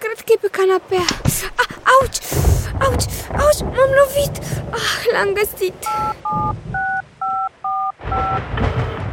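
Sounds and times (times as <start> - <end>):
speech: 0.6 - 2.2, 4.1 - 6.7
low rumbling noise: 2.0 - 9.1
phone keypad tones beeping while dialing a number: 5.9 - 9.0.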